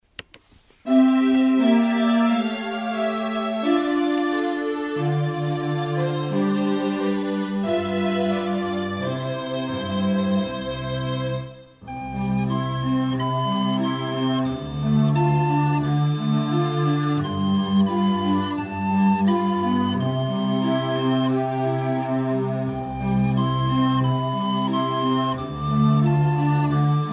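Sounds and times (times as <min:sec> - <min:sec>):
recorder melody played by fifth-grade pupils: 0:00.8 - 0:27.1.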